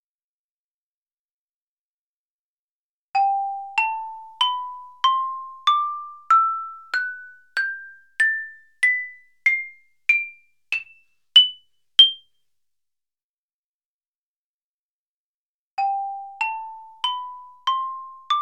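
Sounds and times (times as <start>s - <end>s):
xylophone: 3.2s - 12.2s, 15.8s - 18.4s.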